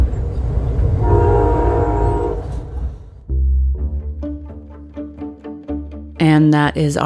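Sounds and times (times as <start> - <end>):
passenger train rumbling along the California coastline: 0.0 - 3.3
loud passenger train horn blasts and pulsing honks: 1.0 - 2.8
speech: 6.2 - 7.0.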